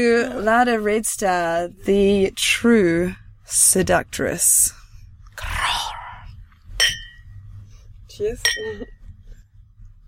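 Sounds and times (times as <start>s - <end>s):
speech: 0.0s - 4.8s, 8.2s - 9.0s
glasses clinking together in a toast: 6.8s - 7.2s, 8.4s - 8.9s.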